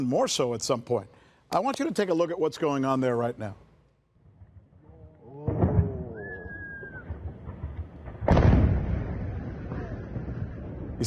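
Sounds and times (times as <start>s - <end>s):
speech: 0.0s - 3.6s
bombing explosion over southern Lebanon with heavy rumble: 5.4s - 11.0s
high whistling tone of incoming shelling: 6.1s - 7.2s.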